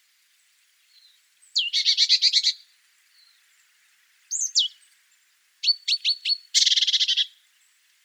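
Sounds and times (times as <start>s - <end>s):
great tit Parus major calls: 1.5s - 2.6s, 4.3s - 4.9s, 5.6s - 7.4s.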